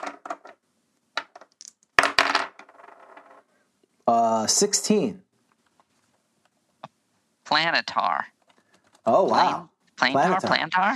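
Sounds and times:
polyhedral dice, a D8 and a D12, rolling on a hard table: 0.0 - 3.5
speech: 4.4 - 5.2, 7.6 - 8.4, 9.0 - 10.9.

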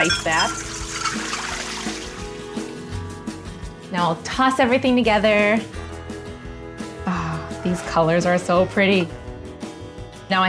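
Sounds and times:
speech: 0.0 - 1.3, 3.9 - 5.8, 7.1 - 9.2, 10.3 - 10.4
water pouring as blanched green beans from an ice bath are drained: 0.0 - 2.5.

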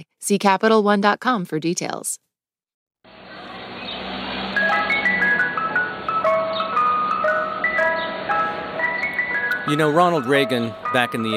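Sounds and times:
speech: 0.2 - 2.3, 9.7 - 11.3
ice cream truck music-box jingle: 3.1 - 11.3.

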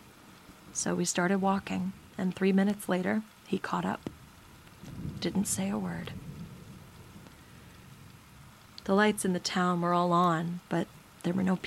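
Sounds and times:
steady rain pattering against a surface: 0.0 - 11.6
speech: 0.8 - 4.1, 5.2 - 6.2, 8.8 - 11.6.

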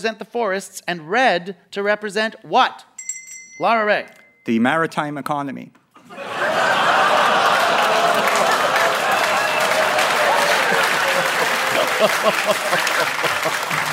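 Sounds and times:
speech: 0.0 - 2.9, 3.6 - 6.6, 12.0 - 13.9
people laughing: 6.0 - 13.9
large audience clapping: 6.1 - 13.9.

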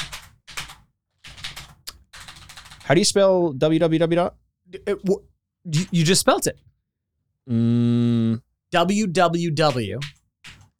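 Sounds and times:
rapid clicking of computer keyboard keys: 0.0 - 2.9, 9.6 - 10.7
speech: 2.9 - 6.7, 7.4 - 10.2.

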